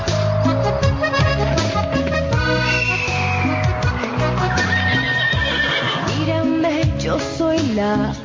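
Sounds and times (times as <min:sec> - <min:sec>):
dense loud musical track with clopping rhythm: 0:00.0 - 0:08.2
horse neighing: 0:04.4 - 0:06.3.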